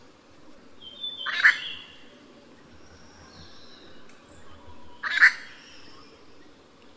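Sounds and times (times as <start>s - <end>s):
background hiss: 0.0s - 6.9s
grey treepie giving loud harsh ringing calls at Yushan: 5.0s - 5.6s.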